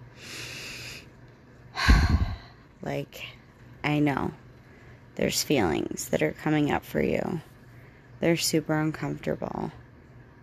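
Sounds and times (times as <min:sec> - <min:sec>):
person taking a soft airy deep inhale: 0:00.2 - 0:01.1
speech: 0:02.8 - 0:04.4, 0:05.2 - 0:07.5, 0:08.2 - 0:09.8.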